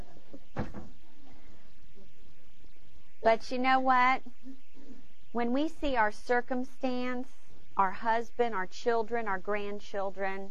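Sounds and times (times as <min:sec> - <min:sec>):
faint noise: 0:00.0 - 0:10.4
door thudding shut: 0:00.5 - 0:01.0
speech: 0:03.2 - 0:04.6, 0:05.3 - 0:10.4.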